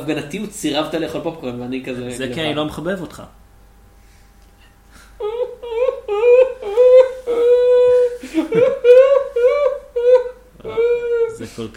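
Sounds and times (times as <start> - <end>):
speech: 0.0 - 3.4, 11.6 - 11.7
person exaggerated fake crying and whimpering: 5.2 - 11.5.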